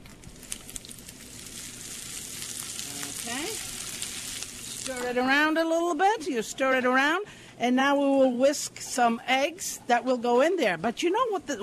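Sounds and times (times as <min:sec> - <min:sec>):
scallions sizzling with sausages in a frying pan: 0:00.1 - 0:06.0
speech: 0:04.9 - 0:11.6.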